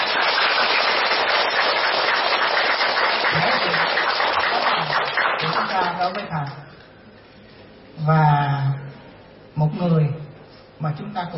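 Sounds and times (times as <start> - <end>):
audience applauding a teacher at a gathering: 0.0 - 6.3
speech: 6.0 - 6.8, 8.0 - 8.7, 9.6 - 10.2, 10.8 - 11.3.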